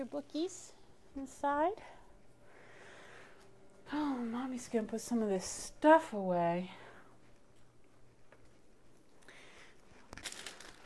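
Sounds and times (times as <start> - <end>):
speech: 0.0 - 2.0, 3.9 - 6.8
birthday present wrapping paper being crumpled: 9.5 - 10.8.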